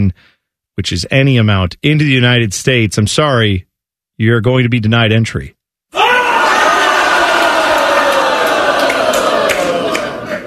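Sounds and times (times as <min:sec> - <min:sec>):
speech: 0:00.0 - 0:05.6
large crowd laughing loudly: 0:06.5 - 0:10.4.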